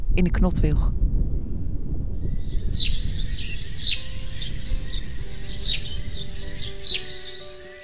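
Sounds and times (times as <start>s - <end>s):
steady low rumble: 0.0s - 7.0s
speech: 0.2s - 1.0s, 2.7s - 3.0s
Eurasian tree sparrow chirps played back from a device: 1.3s - 7.8s.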